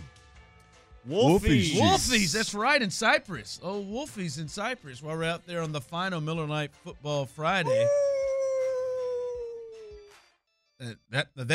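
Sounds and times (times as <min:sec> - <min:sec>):
speech: 0:01.0 - 0:08.1, 0:10.9 - 0:11.5
wolf howling: 0:07.6 - 0:09.8.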